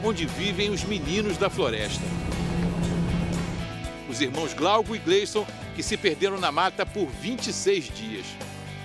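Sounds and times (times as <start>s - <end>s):
speech: 0.0s - 2.4s, 4.1s - 8.5s
speedboat engine cruising on river: 0.0s - 3.8s.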